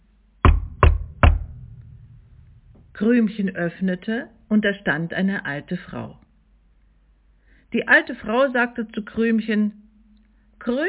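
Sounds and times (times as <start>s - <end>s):
knocking on a door: 0.4s - 1.8s
speech: 3.0s - 6.2s, 7.7s - 9.8s, 10.6s - 10.8s.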